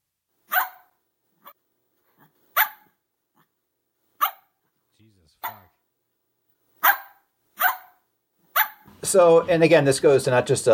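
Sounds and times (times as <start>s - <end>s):
dog barking in sharp yaps: 0.5s - 1.6s, 2.5s - 3.0s, 4.2s - 4.6s, 5.4s - 5.7s, 6.8s - 8.9s
speech: 5.0s - 5.8s, 9.0s - 10.7s.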